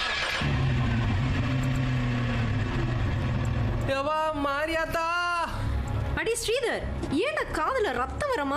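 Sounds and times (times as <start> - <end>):
car engine rumbling as the vehicle begins to move: 0.0 - 5.0
speech: 3.9 - 5.2, 6.2 - 8.5.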